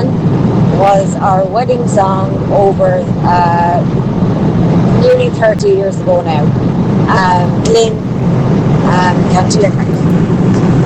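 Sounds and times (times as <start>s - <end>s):
heavy steady rumble of a truck on the road: 0.0s - 10.8s
wind buffeting through an open truck window: 0.0s - 10.8s
speech: 0.8s - 4.2s, 5.0s - 8.3s, 8.9s - 10.4s.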